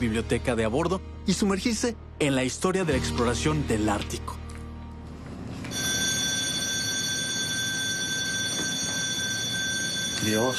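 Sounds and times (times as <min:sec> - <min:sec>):
speech: 0:00.0 - 0:04.4, 0:10.2 - 0:10.5
ship alarm signal for lifeboat drill ringing: 0:05.7 - 0:10.5.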